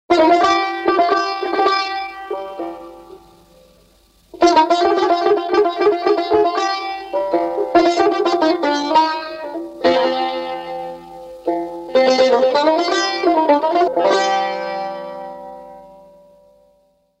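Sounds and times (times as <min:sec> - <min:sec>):
saz playing in Shour mode: 0:00.1 - 0:17.1.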